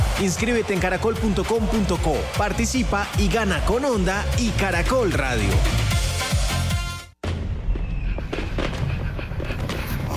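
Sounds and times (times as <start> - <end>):
speech: 0.2 - 6.0
fireworks exploding: 7.2 - 10.1.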